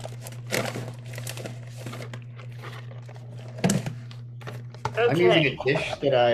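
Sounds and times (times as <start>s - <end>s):
snack bag crinkling: 0.0s - 3.6s
steady low electrical hum: 0.0s - 6.3s
speech: 5.0s - 6.3s.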